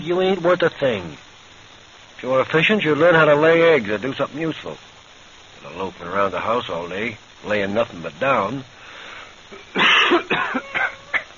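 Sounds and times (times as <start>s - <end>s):
speech: 0.0s - 1.3s, 2.2s - 4.9s, 5.6s - 8.8s
person coughing: 9.6s - 11.3s.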